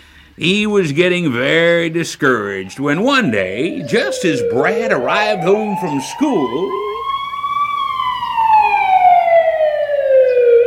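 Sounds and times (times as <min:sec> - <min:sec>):
faint traffic rumble: 0:00.0 - 0:10.6
speech: 0:00.4 - 0:06.8
ambulance siren moving away: 0:02.2 - 0:10.6.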